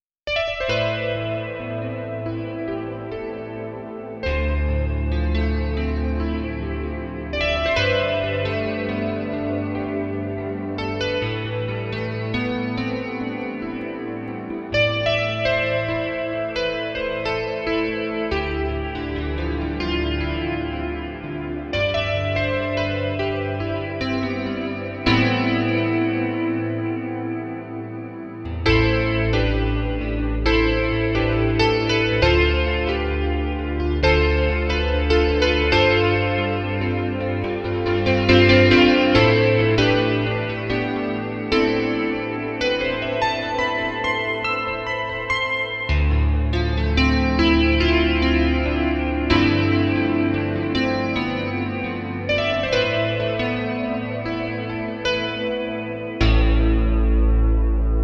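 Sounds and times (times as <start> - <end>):
electric grand piano: 0.3 - 58.0.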